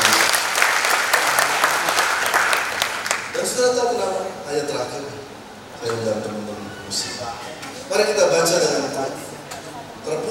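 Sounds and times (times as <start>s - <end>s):
audience applauding with many hands clapping: 0.0s - 3.7s
speech: 3.6s - 9.3s.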